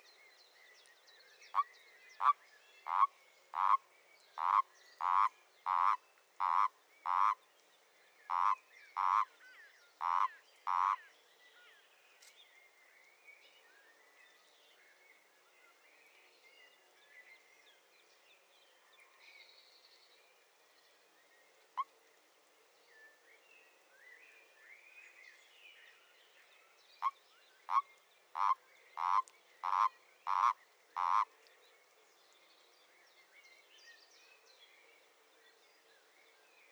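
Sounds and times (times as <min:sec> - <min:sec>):
common toad calling: 0:02.2 - 0:03.8, 0:04.4 - 0:07.4, 0:08.3 - 0:09.3, 0:10.0 - 0:11.0, 0:28.4 - 0:31.3.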